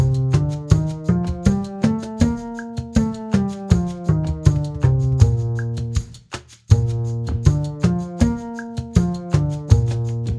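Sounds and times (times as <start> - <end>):
scales in concert Bb: 0.2 - 5.5, 7.4 - 10.3.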